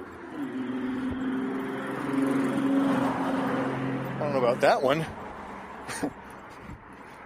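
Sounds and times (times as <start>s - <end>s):
traffic noise with engine drone and road rumble: 0.0s - 7.2s
speech: 4.4s - 5.2s, 5.9s - 6.2s.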